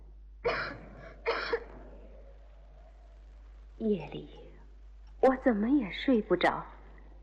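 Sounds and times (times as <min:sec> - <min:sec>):
girl coughing: 0:00.5 - 0:01.8
speech: 0:03.8 - 0:04.4, 0:05.2 - 0:06.7.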